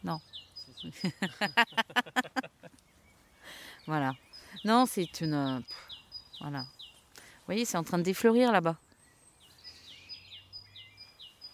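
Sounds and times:
birds singing and chirping outdoors: 0:00.0 - 0:11.5
speech: 0:00.1 - 0:01.9, 0:03.9 - 0:05.8, 0:06.4 - 0:06.8, 0:07.5 - 0:08.9
laughter: 0:00.9 - 0:02.8.

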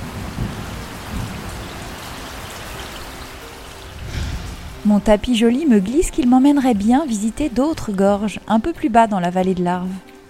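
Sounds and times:
steady autumn rain: 0:00.0 - 0:07.8
speech: 0:04.8 - 0:10.1.

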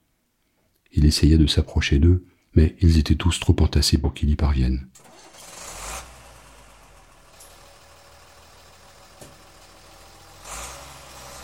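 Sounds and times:
speech: 0:00.9 - 0:05.3
heavy truck engine starting, revving and pulling away: 0:05.0 - 0:11.4.

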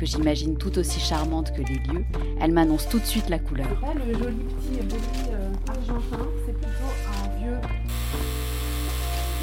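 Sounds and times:
speech: 0:00.0 - 0:08.3
house doorbell buzzing: 0:07.9 - 0:09.4.

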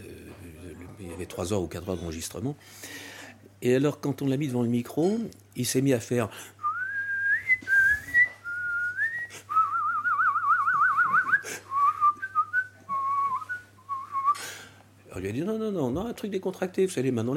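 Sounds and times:
speech: 0:01.0 - 0:06.6, 0:15.2 - 0:17.3
melody whistled in a formal operatic style: 0:06.6 - 0:14.4.

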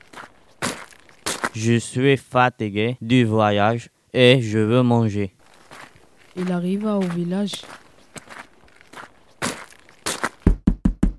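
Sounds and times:
crunchy footsteps approaching: 0:00.0 - 0:01.7, 0:05.4 - 0:10.5
speech: 0:01.5 - 0:05.4, 0:06.4 - 0:07.8
knocks on the wooden door of a village hut: 0:10.5 - 0:11.1.

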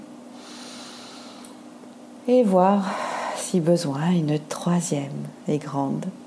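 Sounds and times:
faint low hum: 0:00.0 - 0:06.2
deep breath exhaled through the mouth: 0:00.4 - 0:01.5
speech: 0:02.3 - 0:06.2.

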